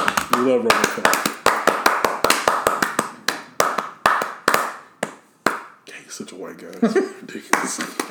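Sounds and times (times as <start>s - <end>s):
person clapping hands: 0.0s - 5.8s, 7.5s - 8.0s
speech: 0.4s - 1.3s, 6.2s - 8.0s.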